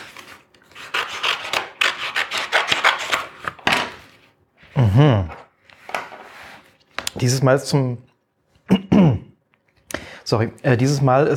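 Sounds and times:
crowbar cutting open a book page: 0:00.0 - 0:03.4
speech: 0:04.8 - 0:05.4, 0:07.2 - 0:08.1, 0:10.3 - 0:11.3.

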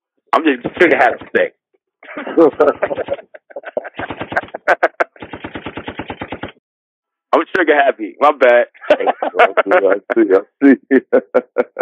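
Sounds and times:
speech: 0:00.4 - 0:03.2, 0:07.5 - 0:11.8
rapid gunfire sound effect with single shots and automatic volley: 0:00.5 - 0:01.5, 0:02.8 - 0:03.2, 0:03.8 - 0:06.6
laughter: 0:02.0 - 0:05.2, 0:08.7 - 0:11.8.

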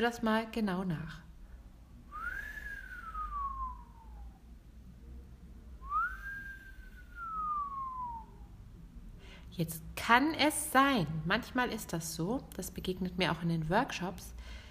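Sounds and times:
speech: 0:00.0 - 0:01.2, 0:09.6 - 0:14.6
person whistling long swooping notes: 0:02.1 - 0:04.4, 0:05.8 - 0:08.5.

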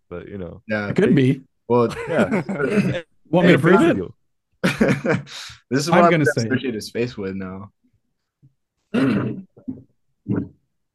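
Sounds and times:
speech: 0:00.1 - 0:07.8, 0:08.9 - 0:10.6
laughter: 0:01.9 - 0:03.0, 0:04.6 - 0:05.5
person clearing throat: 0:08.9 - 0:09.6.

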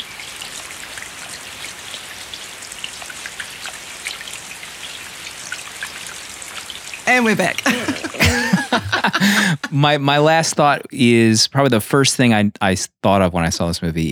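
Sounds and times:
raindrops pattering on an umbrella: 0:00.0 - 0:08.5
speech: 0:07.1 - 0:07.8, 0:08.8 - 0:14.1
laughter: 0:07.1 - 0:10.9.

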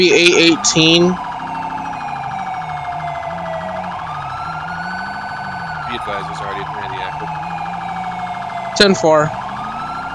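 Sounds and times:
speech: 0:00.0 - 0:01.3, 0:08.8 - 0:09.4
ambulance emergency siren wailing: 0:00.0 - 0:10.1
speeding ambulance engine rumble: 0:00.0 - 0:10.1.

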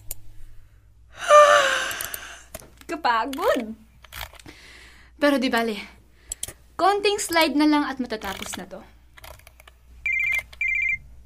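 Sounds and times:
speech: 0:03.0 - 0:03.8, 0:05.2 - 0:06.0, 0:06.8 - 0:08.9
mobile phone electronic ringtone for an incoming call: 0:10.0 - 0:11.1.

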